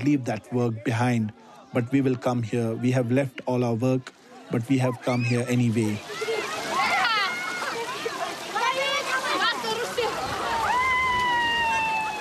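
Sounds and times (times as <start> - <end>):
speech: 0.0 - 6.3
people shouting and chattering on a celebration day: 0.0 - 12.1
young men and elders wading and splashing through spring water: 0.0 - 12.1
children's voices on a celebration day: 6.0 - 11.7.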